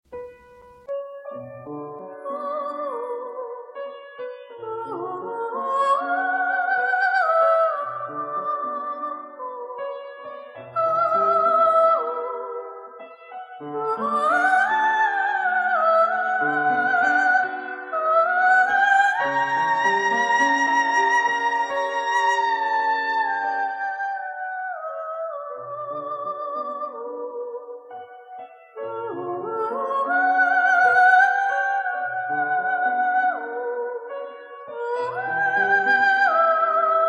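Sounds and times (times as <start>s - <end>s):
piano: 0.0s - 37.0s.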